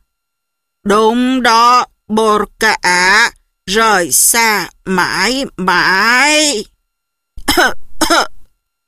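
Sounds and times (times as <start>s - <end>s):
speech: 0.9s - 6.7s, 7.5s - 8.3s
old man clearing his throat and coughing into his fist: 7.4s - 8.3s.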